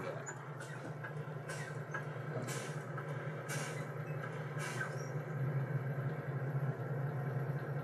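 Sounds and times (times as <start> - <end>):
truck diesel engine idling: 0.0 - 7.8
truck air brake compressor cutting out with short sharp air hisses: 0.6 - 5.2.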